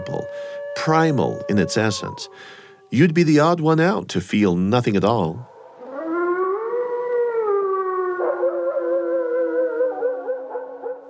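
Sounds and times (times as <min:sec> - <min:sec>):
wolf howling: 0:00.0 - 0:03.2, 0:05.6 - 0:11.0
speech: 0:00.1 - 0:05.5.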